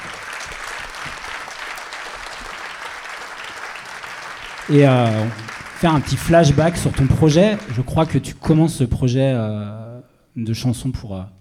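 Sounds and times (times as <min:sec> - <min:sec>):
audience applause: 0:00.0 - 0:08.4
speech: 0:04.7 - 0:11.4.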